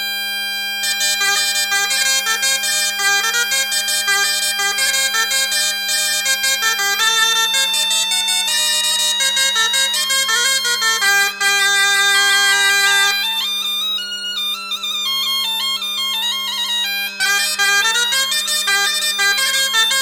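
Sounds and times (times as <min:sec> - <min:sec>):
biniou and bombarde playing a plinn dance tune: 0:00.7 - 0:20.0.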